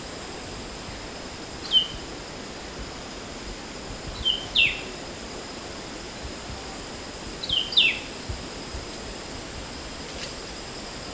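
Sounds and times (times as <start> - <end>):
steady hiss: 0.0 - 11.1
Temminck's babbler giving short high chirped notes: 1.6 - 2.0, 4.1 - 4.9, 7.4 - 8.1.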